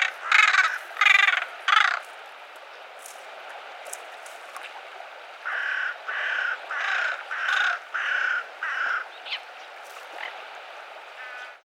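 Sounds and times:
Carrion crow Corvus corone cawing: 0:00.0 - 0:02.1, 0:05.4 - 0:09.4, 0:11.2 - 0:11.6.

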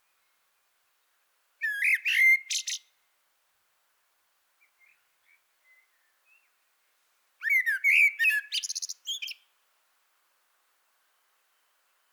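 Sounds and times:
common blackbird Turdus merula singing: 0:01.6 - 0:02.8, 0:07.4 - 0:09.4.

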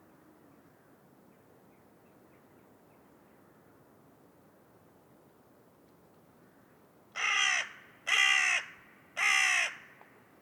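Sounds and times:
carrion crow Corvus corone cawing: 0:07.2 - 0:10.0.

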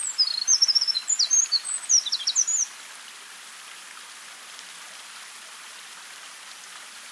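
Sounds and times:
Eurasian wren Troglodytes troglodytes song: 0:00.0 - 0:02.7
background hiss: 0:00.0 - 0:07.1.

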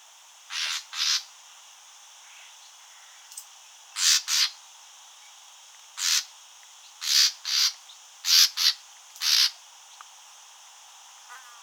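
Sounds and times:
faint background hiss: 0:00.0 - 0:11.6
common nightingale Luscinia megarhynchos rasping grating calls: 0:00.5 - 0:01.3, 0:04.0 - 0:04.6, 0:06.0 - 0:06.3, 0:07.0 - 0:09.6.

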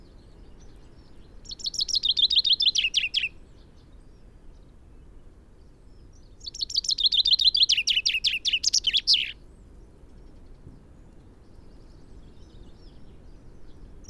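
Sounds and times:
low background hiss: 0:00.0 - 0:14.0
Common chaffinch song Fringilla coelebs: 0:00.1 - 0:04.7, 0:06.0 - 0:09.4, 0:11.5 - 0:14.0.

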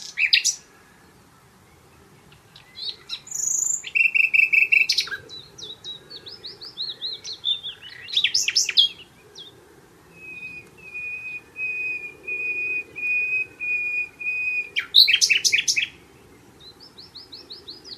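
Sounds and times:
Common nightingale Luscinia megarhynchos song: 0:00.0 - 0:17.9.

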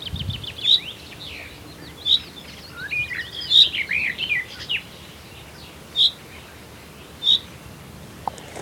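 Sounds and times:
common chaffinch Fringilla coelebs calling and twittering: 0:00.0 - 0:07.8.

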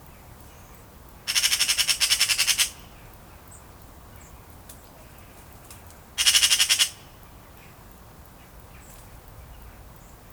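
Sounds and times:
soft background hiss: 0:00.0 - 0:10.3
Eurasian magpie Pica pica chattering rattle: 0:01.3 - 0:02.8, 0:06.2 - 0:07.0.

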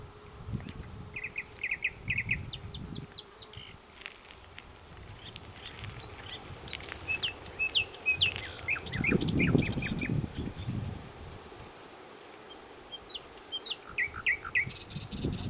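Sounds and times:
common nightingale song, Luscinia megarhynchos: 0:00.6 - 0:03.8, 0:05.2 - 0:10.8, 0:12.5 - 0:15.4.

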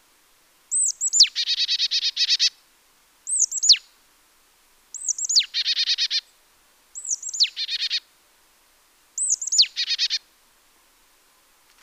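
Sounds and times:
marsh tit Poecile palustris calling: 0:00.7 - 0:02.5, 0:03.3 - 0:03.8, 0:04.9 - 0:06.2, 0:07.0 - 0:08.0, 0:09.2 - 0:10.2.

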